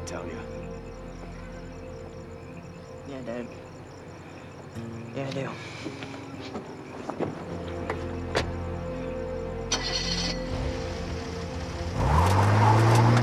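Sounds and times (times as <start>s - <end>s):
speech: 0.1s - 0.7s, 3.1s - 3.7s, 4.8s - 7.7s
car engine revving as it drives off after idling: 9.7s - 13.2s.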